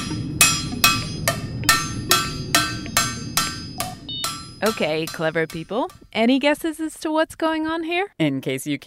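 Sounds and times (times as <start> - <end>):
hand hammering the heated edges of a pressed skillet: 0.0 - 6.2
low rumble: 0.0 - 6.2
speech: 4.6 - 8.8.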